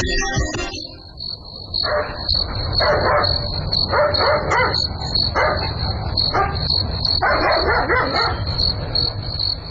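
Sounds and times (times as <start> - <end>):
high-pitched chorus of crickets trilling at night: 0.1 - 9.6
dog barking at night: 1.8 - 8.5.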